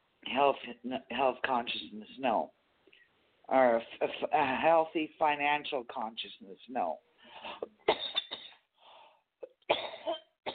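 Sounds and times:
speech: 0.3s - 2.6s, 3.5s - 7.8s
smoker coughing in harsh wet bursts: 7.4s - 8.6s, 9.4s - 10.5s.

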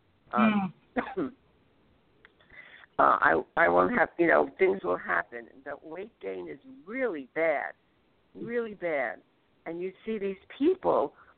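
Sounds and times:
faint hiss: 0.0s - 11.3s
speech: 0.3s - 1.4s, 3.0s - 7.8s, 8.4s - 11.2s
throaty cough: 0.3s - 1.4s.

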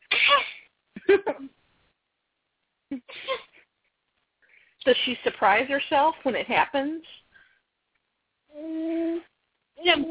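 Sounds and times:
voice imitating a baby's suppressed sneeze: 0.0s - 0.7s
speech: 1.1s - 1.6s, 4.8s - 7.2s, 9.8s - 10.1s.

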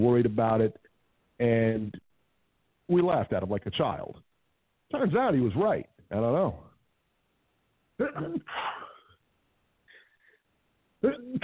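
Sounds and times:
speech: 0.0s - 0.8s, 1.4s - 2.0s, 2.9s - 4.3s, 4.9s - 6.7s, 8.0s - 8.8s, 11.0s - 11.4s
person sneezing: 8.0s - 9.2s, 11.0s - 11.4s.

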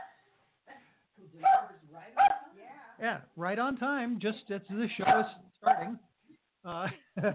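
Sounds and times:
speech: 1.3s - 7.3s
small dog barking at a delivery person: 1.4s - 2.6s, 5.0s - 6.0s.

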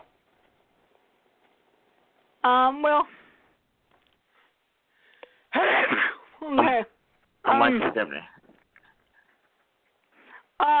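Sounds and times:
speech: 2.4s - 3.2s, 7.6s - 8.4s
sneeze: 5.5s - 6.9s.

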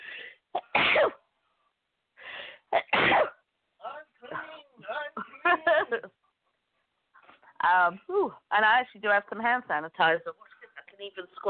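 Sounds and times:
person sneezing loudly: 0.6s - 1.2s, 2.8s - 3.4s
speech: 7.8s - 11.4s.

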